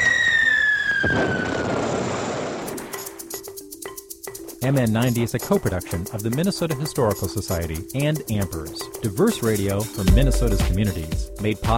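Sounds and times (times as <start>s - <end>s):
World War I artillery shell whistling and exploding: 0.0s - 3.1s
speech: 4.6s - 11.7s.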